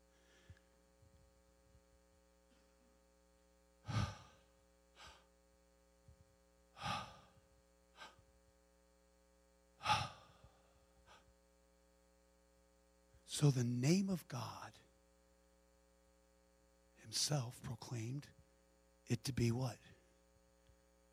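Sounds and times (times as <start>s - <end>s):
steady low mains hum: 0.0s - 21.1s
audible breaths voiced to imitate a divine name: 3.8s - 5.3s, 6.8s - 7.4s, 8.0s - 8.2s, 9.8s - 11.3s
speech: 13.3s - 14.9s, 17.1s - 18.4s, 19.1s - 20.0s.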